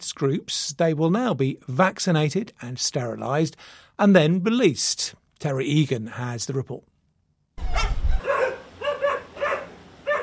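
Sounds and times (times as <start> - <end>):
speech: 0.2 - 6.9
stray dogs barking: 7.7 - 10.2.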